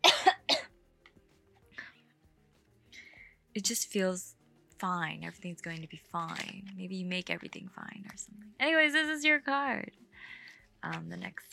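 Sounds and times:
person clearing throat: 0.0s - 0.7s
person coughing sharply: 0.0s - 0.7s
speech: 3.6s - 10.0s, 10.8s - 11.5s.

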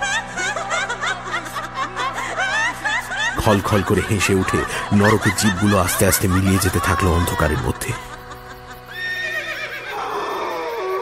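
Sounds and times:
laughter: 0.0s - 10.9s
speech: 3.4s - 8.1s
horses neighing and whinnying in terror: 8.8s - 10.9s.

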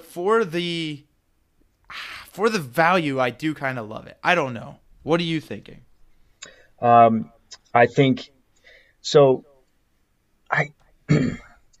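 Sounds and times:
speech: 0.2s - 1.1s, 1.9s - 8.4s, 9.0s - 9.5s, 10.5s - 11.5s
person clearing throat: 11.1s - 11.6s.

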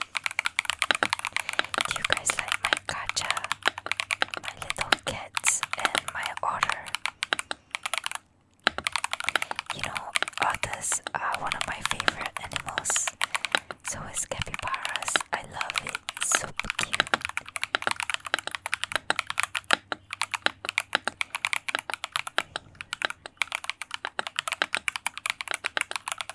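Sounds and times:
faint low hum: 0.0s - 21.4s
keyboard typing with crisp bright clicks: 0.0s - 26.3s.

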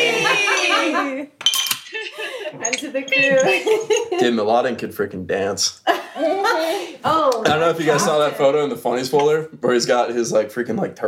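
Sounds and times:
drawn-out voiced cheer: 0.0s - 1.2s
laughter: 0.0s - 4.5s, 5.8s - 7.0s
glasses clinking in a toast: 0.2s - 4.4s, 9.0s - 9.5s
speech: 2.7s - 11.0s.

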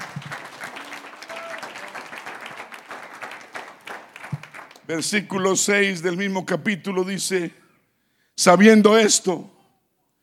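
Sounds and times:
congregation applauding: 0.0s - 5.0s
speech: 4.9s - 7.6s, 8.4s - 9.6s.

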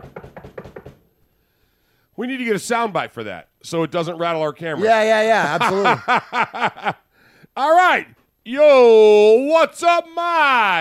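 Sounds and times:
knocking on wood: 0.0s - 1.0s
speech: 2.2s - 7.0s, 7.6s - 10.7s
laughter: 4.8s - 7.0s.

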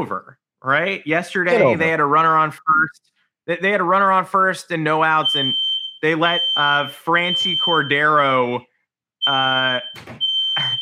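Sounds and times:
speech: 0.0s - 8.7s, 9.3s - 10.8s
shrill high-pitched fire alarm tone: 5.2s - 8.4s, 9.2s - 10.8s.

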